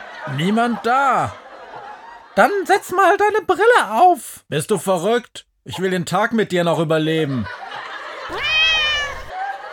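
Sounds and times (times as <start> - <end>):
laughter: 0.0 - 2.6, 7.2 - 9.7
speech: 0.2 - 1.4, 2.4 - 7.6
cat meowing: 8.3 - 9.3.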